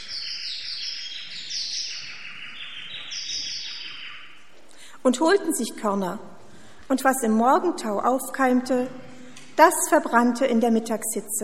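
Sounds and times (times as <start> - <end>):
birds chirping in a dense overlapping chorus: 0.0 - 5.8
speech: 5.0 - 11.4.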